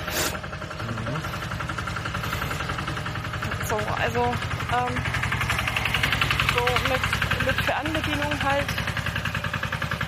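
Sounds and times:
tractor-like vehicle engine rumbling: 0:00.0 - 0:10.0
speech: 0:03.7 - 0:05.2, 0:06.6 - 0:08.8.

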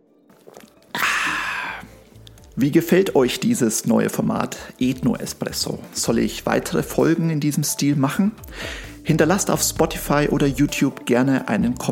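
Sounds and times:
person slurping the last sip of a drink: 0:00.3 - 0:02.6
speech: 0:02.6 - 0:11.9.

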